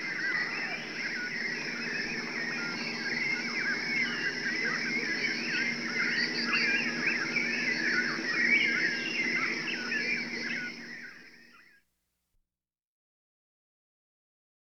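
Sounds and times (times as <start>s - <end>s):
birds chirping and twittering in a dense chorus: 0.0s - 11.7s.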